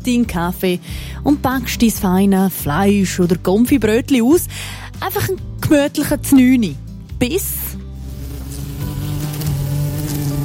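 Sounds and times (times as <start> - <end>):
speech: 0.0 - 7.7
wasp buzzing around a sandwich outdoors: 7.2 - 10.4.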